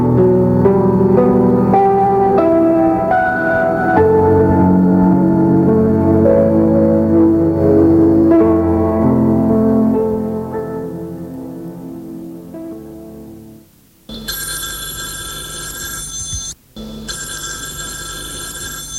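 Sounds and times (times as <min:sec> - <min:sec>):
low musical tones: 0:00.0 - 0:14.3
telephone bell ringing: 0:14.1 - 0:18.9.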